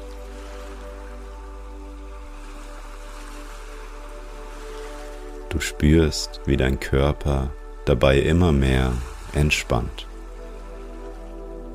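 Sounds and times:
ocean waves breaking on the shore: 0.0s - 5.5s, 8.5s - 11.7s
speech: 5.5s - 10.1s.

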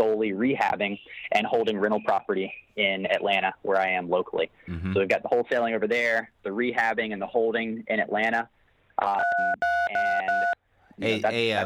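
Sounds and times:
speech: 0.2s - 11.6s
phone keypad touch-tone beeps pressed accidentally during a call: 9.2s - 10.6s.

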